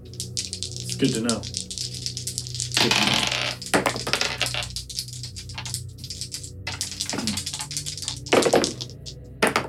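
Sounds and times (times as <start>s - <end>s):
speech: 1.0s - 1.6s, 2.8s - 3.2s
dice clattering and bouncing across a hard tabletop during a game: 2.7s - 5.8s, 6.7s - 9.6s.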